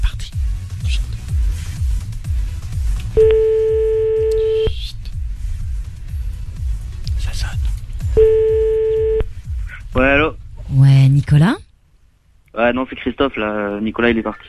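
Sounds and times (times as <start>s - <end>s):
low rhythmic pulsing background: 0.0s - 11.6s
telephone ringback tones: 3.2s - 4.7s
speech: 12.7s - 14.4s.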